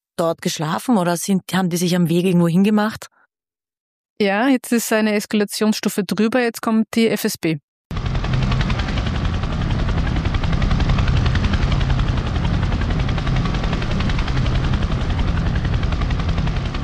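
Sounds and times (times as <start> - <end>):
speech: 0.2 - 3.2, 4.2 - 7.6
helicopter rotor thudding while hovering over a ship's deck: 7.9 - 16.8.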